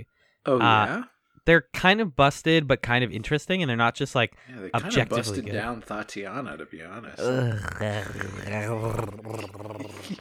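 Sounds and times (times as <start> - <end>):
speech: 0.0 - 10.1
person imitating a cat purr with a low rumbling growly sound: 7.2 - 10.1.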